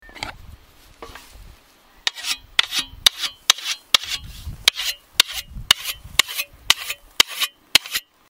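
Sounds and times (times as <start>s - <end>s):
grindstone sharpening: 2.1s - 8.1s.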